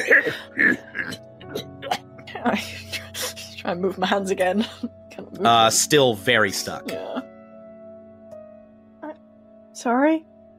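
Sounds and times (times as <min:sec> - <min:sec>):
speech: 0:00.0 - 0:00.8, 0:02.4 - 0:02.8, 0:03.7 - 0:07.3, 0:09.8 - 0:10.3
woman coughing harshly: 0:00.0 - 0:02.2, 0:06.8 - 0:07.3.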